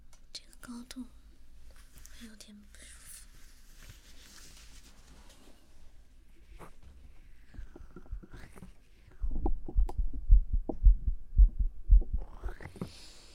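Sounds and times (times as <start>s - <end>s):
speech: 0.7s - 1.2s, 2.2s - 3.0s
rubbing and scraping noises: 3.0s - 9.8s
heartbeat picked up by microphone: 7.6s - 8.6s, 9.2s - 12.8s.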